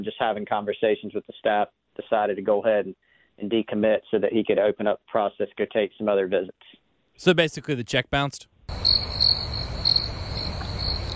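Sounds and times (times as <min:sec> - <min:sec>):
speech: 0:00.0 - 0:10.0
crickets chirping on a quiet night: 0:08.7 - 0:11.1.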